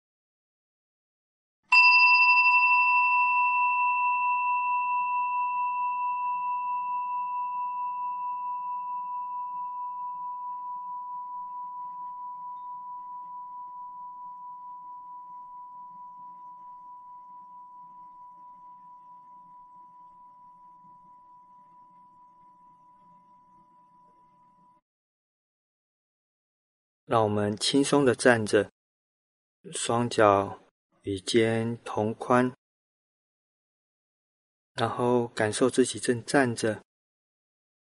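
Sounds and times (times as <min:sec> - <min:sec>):
meditation bell struck and ringing: 0:01.7 - 0:24.8
speech: 0:27.1 - 0:28.8, 0:29.6 - 0:32.6, 0:34.8 - 0:36.9.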